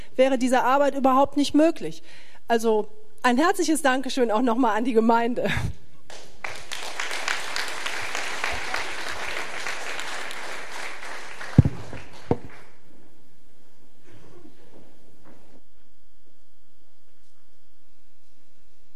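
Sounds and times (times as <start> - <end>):
speech: 0.2 - 5.8
crowd at a church service clapping: 6.1 - 12.8.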